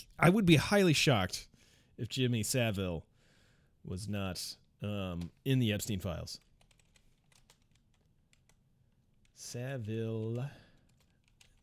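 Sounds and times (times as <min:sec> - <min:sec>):
speech: 0:00.0 - 0:03.1, 0:03.8 - 0:06.5, 0:09.4 - 0:10.6
typing on a computer keyboard: 0:06.3 - 0:09.4, 0:10.0 - 0:11.6.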